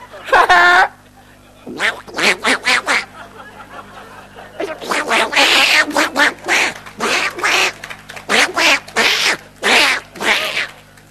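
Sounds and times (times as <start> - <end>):
laughter: 0.0 - 8.3
voice imitating raspy duck quacks: 1.6 - 3.2, 4.6 - 10.8.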